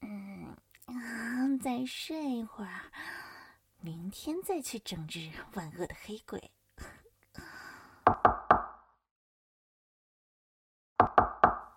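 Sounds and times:
speech: 0:01.6 - 0:03.1, 0:03.8 - 0:06.9
firm knocks on a door: 0:08.1 - 0:08.7, 0:11.0 - 0:11.6.

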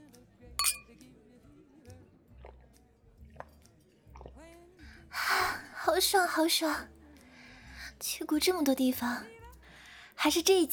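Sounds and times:
glasses clinking in a toast: 0:00.6 - 0:00.8
speech: 0:06.0 - 0:06.9, 0:08.0 - 0:09.4, 0:10.2 - 0:10.7.

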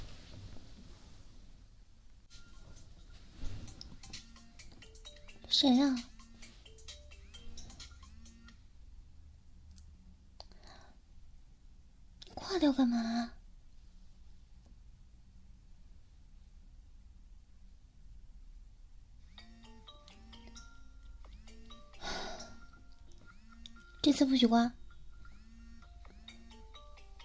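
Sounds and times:
phone ringtone for an incoming call: 0:02.3 - 0:08.6, 0:19.3 - 0:27.2
speech: 0:05.6 - 0:06.1, 0:24.2 - 0:24.8.

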